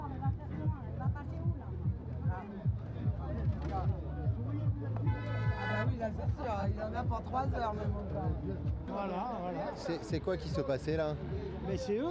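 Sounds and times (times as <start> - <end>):
crowd of voices chattering: 0.0 - 12.1
truck horns honking at a roadblock: 5.1 - 6.0
speech: 6.1 - 12.1.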